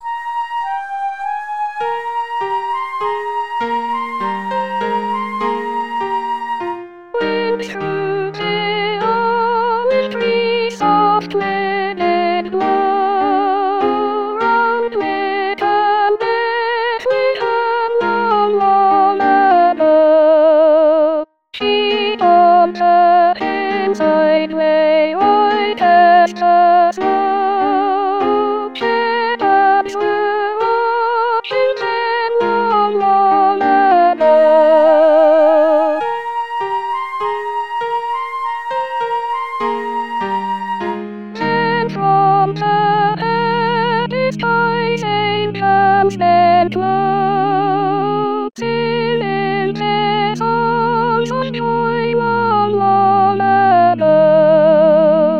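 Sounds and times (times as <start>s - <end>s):
soprano singing Christmas rehearsal track: 0.0s - 55.3s.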